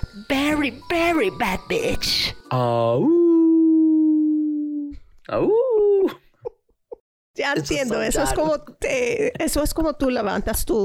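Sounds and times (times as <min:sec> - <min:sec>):
speech: 0:00.2 - 0:03.2, 0:05.3 - 0:06.2, 0:07.4 - 0:10.8
person imitating a dog's howl: 0:03.0 - 0:06.2.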